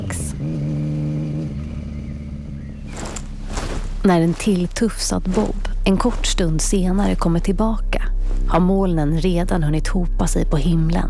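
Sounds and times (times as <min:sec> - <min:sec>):
motorcycle engine revving as it rides off: 0:00.0 - 0:08.5
speech: 0:04.0 - 0:11.0.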